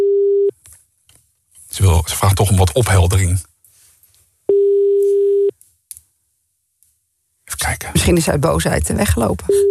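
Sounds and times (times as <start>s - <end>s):
landline phone ringback tone on an outgoing call: 0.0s - 0.5s, 4.5s - 5.5s
speech: 1.8s - 3.5s, 8.1s - 9.7s.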